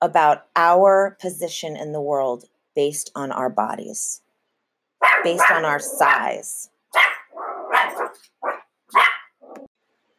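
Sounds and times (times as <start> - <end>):
speech: 0.0 - 4.2, 5.2 - 7.1
dog barking: 5.0 - 5.8, 6.9 - 9.6.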